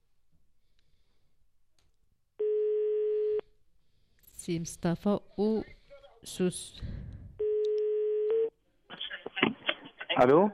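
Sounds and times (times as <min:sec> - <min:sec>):
telephone ringing tone on a call to a mobile number: 0:02.4 - 0:03.4, 0:07.4 - 0:08.5
speech: 0:04.5 - 0:07.1, 0:10.2 - 0:10.5
person speaking on telephone: 0:08.9 - 0:10.5.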